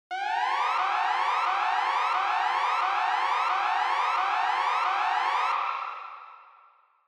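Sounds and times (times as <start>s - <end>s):
warning siren with long high reverb: 0.1s - 5.6s.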